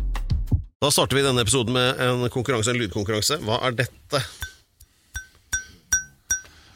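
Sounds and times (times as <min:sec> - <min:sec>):
speech: 0:00.8 - 0:04.5
glass trophy clinking: 0:05.2 - 0:06.6.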